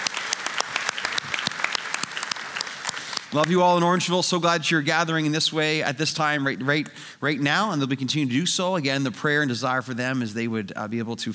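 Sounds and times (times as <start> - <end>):
audience applauding: 0.0 - 3.8
speech: 3.3 - 11.3.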